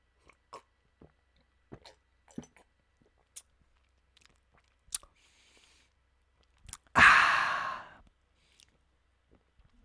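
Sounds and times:
small gulps of Hood eggnog: 0.1s - 8.8s
wet mouth clicks while sipping Hood eggnog: 1.8s - 5.2s, 6.4s - 6.9s
loud breathy satisfied exhale: 7.0s - 8.0s.

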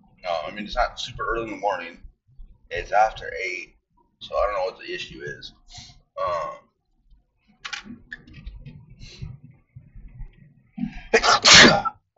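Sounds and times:
speech: 0.5s - 2.1s, 2.7s - 6.6s, 11.1s - 12.0s
person sneezing: 11.2s - 11.9s.

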